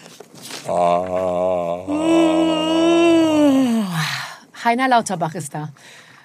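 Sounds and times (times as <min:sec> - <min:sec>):
speech: 0:00.6 - 0:01.4, 0:04.7 - 0:06.0
person yawning: 0:00.7 - 0:04.0.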